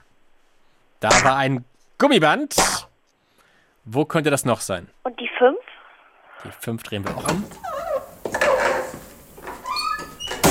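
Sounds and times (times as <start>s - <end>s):
speech: 1.0s - 2.9s, 3.8s - 5.8s, 6.4s - 7.7s
old door creaking on its hinges: 7.2s - 10.5s
door bumping as it stops: 10.0s - 10.5s.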